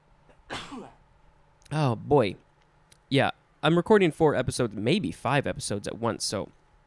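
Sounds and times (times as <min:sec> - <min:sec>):
sneeze caused by allergies: 0:00.5 - 0:01.0
speech: 0:01.7 - 0:02.4, 0:03.1 - 0:06.6.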